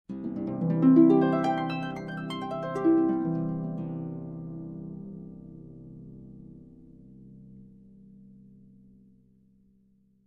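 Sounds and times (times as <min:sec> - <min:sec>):
harp glissando up and down: 0:00.3 - 0:04.6.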